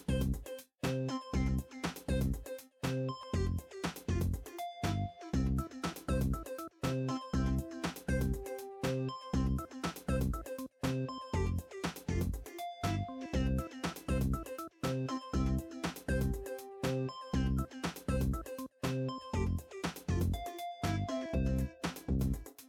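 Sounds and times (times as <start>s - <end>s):
cheerful music: 0.2s - 22.5s.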